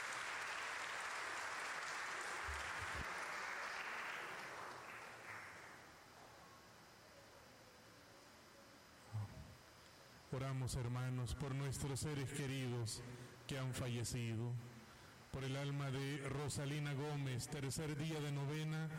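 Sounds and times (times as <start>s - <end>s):
audience applauding: 0.0s - 5.9s
speech: 10.3s - 14.7s, 15.3s - 18.9s.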